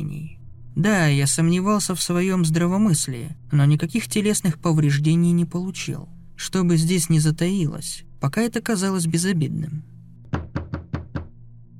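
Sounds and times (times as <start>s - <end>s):
speech: 0.8s - 9.9s
loud knocking on a door: 10.3s - 11.4s.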